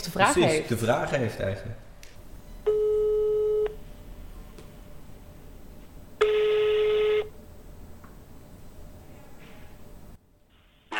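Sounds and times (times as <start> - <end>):
speech: 0.1 - 1.8
steady electronic telephone tones, busy signal and voicemail beep: 2.5 - 3.8, 6.2 - 7.3.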